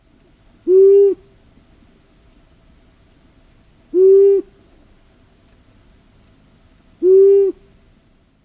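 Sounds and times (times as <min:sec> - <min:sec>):
long-eared owl hooting: 0:00.6 - 0:01.3, 0:03.9 - 0:04.6, 0:07.0 - 0:07.7.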